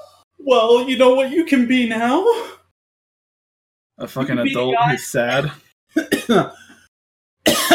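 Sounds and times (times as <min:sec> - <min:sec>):
speech: 0:00.5 - 0:02.6, 0:04.0 - 0:06.6
rough coughing: 0:06.0 - 0:06.8, 0:07.4 - 0:07.7.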